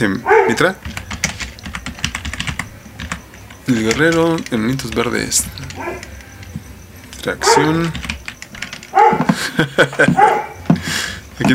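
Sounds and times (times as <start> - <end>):
speech: 0.0 - 1.0, 3.7 - 6.2, 7.2 - 8.1, 9.4 - 10.5, 11.4 - 11.5
dog tied up on a short leash barking fiercely: 0.2 - 0.8, 5.7 - 6.1, 7.4 - 7.9, 8.9 - 9.4, 10.0 - 10.7
laughter: 9.2 - 11.2.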